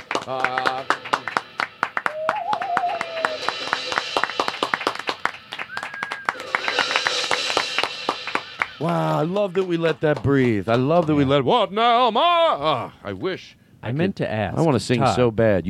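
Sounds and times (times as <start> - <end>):
lively applause from a small group: 0.0 - 11.3
speech: 0.2 - 1.2, 8.8 - 15.6
people calling out and whooping: 2.0 - 3.7.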